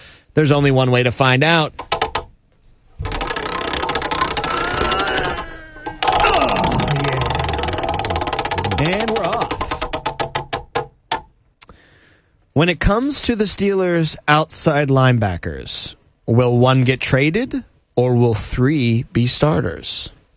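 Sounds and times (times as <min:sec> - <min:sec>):
speech: 0:00.4 - 0:01.8, 0:12.6 - 0:20.2
prize wheel spinning with pointer ticking against pegs: 0:03.0 - 0:10.6.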